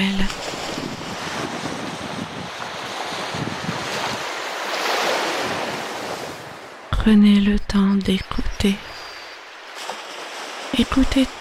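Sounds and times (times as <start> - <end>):
sea waves: 0.0 - 11.4
wind buffeting the microphone: 0.2 - 4.7, 5.3 - 6.7
speech: 7.1 - 8.9, 10.8 - 11.4.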